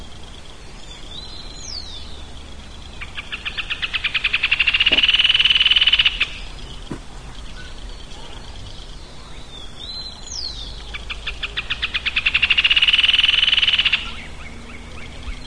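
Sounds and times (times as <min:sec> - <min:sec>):
bird singing with chirps, sliding whistle and buzzy rattle: 0:00.0 - 0:15.4.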